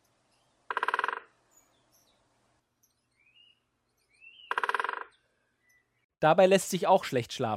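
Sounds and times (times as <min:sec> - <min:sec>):
faint birdsong chirping: 0:00.0 - 0:06.2
woodpecker drumming on a tree: 0:00.6 - 0:02.3, 0:02.9 - 0:05.8
speech: 0:06.2 - 0:07.5.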